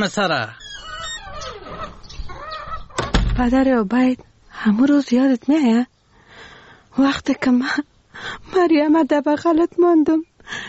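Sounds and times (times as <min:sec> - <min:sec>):
speech: 0:00.0 - 0:00.6, 0:03.4 - 0:05.9, 0:07.0 - 0:10.6
chickens clucking: 0:00.9 - 0:03.1.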